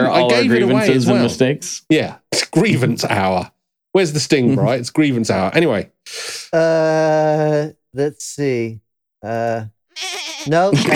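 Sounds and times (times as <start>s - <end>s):
speech: 0.4s - 10.9s
goat bleating: 10.0s - 10.8s.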